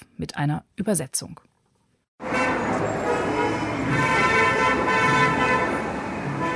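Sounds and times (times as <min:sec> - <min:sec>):
speech: 0:00.2 - 0:01.6
car horns honking in Cairo city traffic: 0:02.2 - 0:06.5
dense city traffic roar in Cairo: 0:02.2 - 0:06.5.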